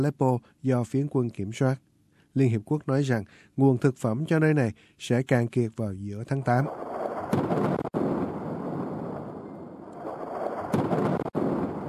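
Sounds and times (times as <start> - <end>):
speech: 0.0 - 7.7
heavy artillery blasts: 6.7 - 11.8.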